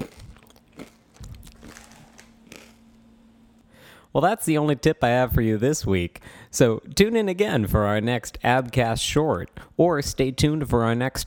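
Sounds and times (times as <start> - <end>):
crunchy chewing of raw arugula: 0.0 - 3.0
faint steady hum: 0.0 - 11.2
speech: 4.1 - 11.2.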